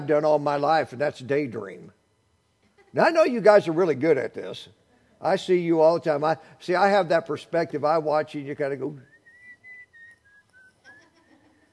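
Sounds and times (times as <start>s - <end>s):
speech: 0.0s - 2.0s, 2.9s - 9.1s
person whistling idly: 9.0s - 11.0s.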